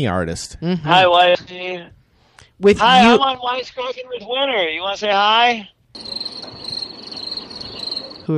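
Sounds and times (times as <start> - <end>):
speech: 0.0 - 2.0, 2.6 - 6.2
crickets chirping: 5.9 - 8.3.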